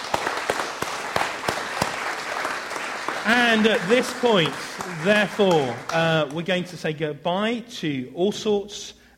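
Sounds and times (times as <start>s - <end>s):
group of people applauding: 0.0s - 6.6s
speech: 3.2s - 9.1s.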